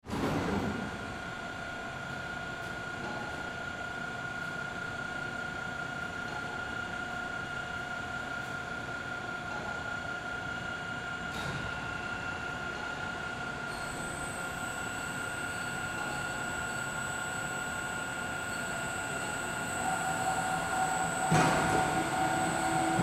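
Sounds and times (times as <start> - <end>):
airport X-ray machine conveyor belt running with luggage: 0.1 - 23.0.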